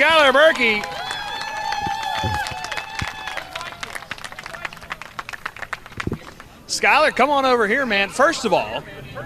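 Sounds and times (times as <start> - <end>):
race track crowd whooping and cheering: 0.0 - 5.1
large outdoor crowd applauding at a race track: 0.0 - 6.6
speech: 0.1 - 1.0, 6.8 - 9.2.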